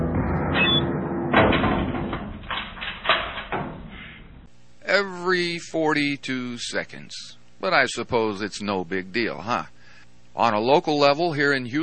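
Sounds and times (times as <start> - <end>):
continuous low rumble: 0.0 - 4.5
prison cell door slamming shut: 0.2 - 4.5
speech: 5.0 - 9.8, 10.4 - 11.8.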